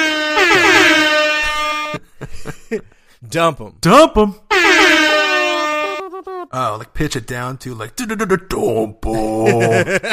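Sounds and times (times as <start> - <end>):
air horn sound effect blaring: 0.0 - 2.0, 4.5 - 6.1
laughter: 1.9 - 3.0, 5.9 - 6.5, 9.1 - 10.1
speech: 2.7 - 4.6, 6.4 - 10.1.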